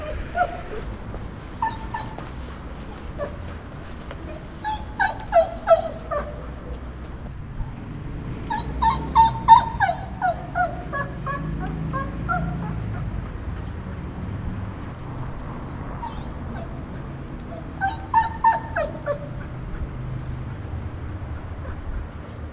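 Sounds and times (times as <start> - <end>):
domestic dog whimpering and whining: 0.0 - 1.0, 1.6 - 7.2, 8.2 - 13.1, 15.6 - 20.6
steady low-pitched background rumble: 0.0 - 22.5.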